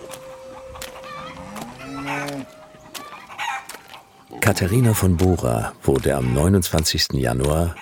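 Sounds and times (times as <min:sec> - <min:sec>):
flock of chickens clucking: 0:00.0 - 0:07.8
rooster crowing: 0:00.3 - 0:03.8
speech: 0:04.5 - 0:07.8.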